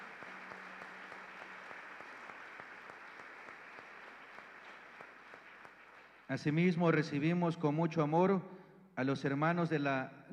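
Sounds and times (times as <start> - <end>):
crowd applauding in a parish church: 0.0 - 6.4
speech: 6.3 - 10.3.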